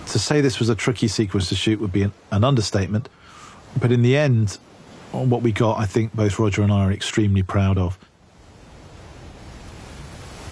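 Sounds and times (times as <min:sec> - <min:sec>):
rushing whitewater of a river in flood by the River Tees: 0:00.0 - 0:10.5
speech: 0:00.1 - 0:08.1.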